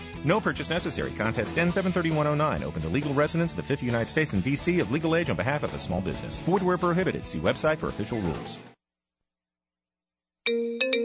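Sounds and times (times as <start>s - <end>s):
speech: 0.2s - 8.7s
text message notification tone as a bright three-note chime: 10.5s - 11.0s.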